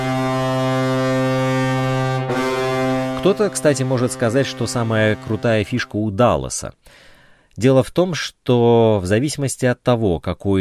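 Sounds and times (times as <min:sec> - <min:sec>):
massive aircraft carrier signal horn blast: 0:00.0 - 0:05.9
speech: 0:03.2 - 0:10.6.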